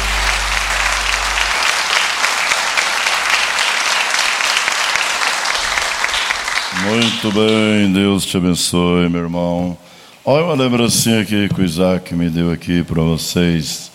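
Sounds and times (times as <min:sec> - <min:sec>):
crowd clapping in praise of Jesus: 0:00.0 - 0:07.9
speech: 0:06.9 - 0:13.9.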